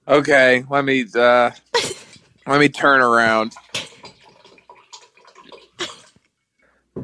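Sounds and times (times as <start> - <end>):
speech: 0.1 - 1.7, 2.4 - 3.6
rush of running water like a tap or small waterfall: 1.8 - 6.2.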